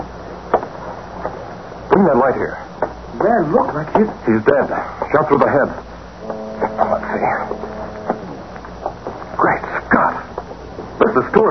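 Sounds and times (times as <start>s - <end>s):
speech: 1.3s - 2.6s, 3.2s - 7.8s, 11.0s - 11.4s
police motorboat engine droning: 5.9s - 9.5s.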